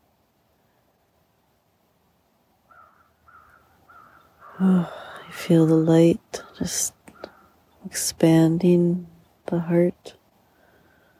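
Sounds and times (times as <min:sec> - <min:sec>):
quiet outdoor noise: 0:00.0 - 0:11.1
raven calling with harsh croaking caws: 0:02.7 - 0:04.7
speech: 0:04.6 - 0:07.0, 0:07.8 - 0:10.2.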